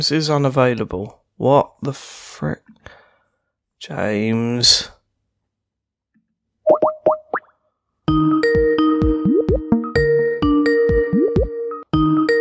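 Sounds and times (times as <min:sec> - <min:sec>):
speech: 0:00.0 - 0:03.0, 0:03.8 - 0:05.0
online call ringtone: 0:08.1 - 0:12.3.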